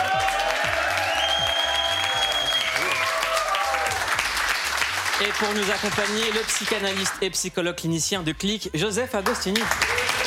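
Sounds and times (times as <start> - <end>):
studio audience applause: 0.0 - 7.2, 9.2 - 10.2
speech: 5.2 - 10.1.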